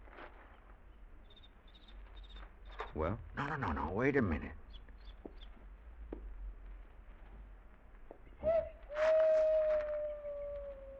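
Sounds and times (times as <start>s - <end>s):
speech: 3.0s - 4.6s
owl hooting: 8.4s - 10.9s.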